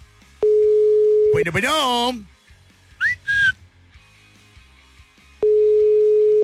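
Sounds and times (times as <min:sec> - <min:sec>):
telephone ringback tone while dialing a call: 0:00.4 - 0:01.4, 0:05.4 - 0:06.4
speech: 0:01.4 - 0:02.4
brief whistle-like telephone chirps: 0:03.0 - 0:03.6.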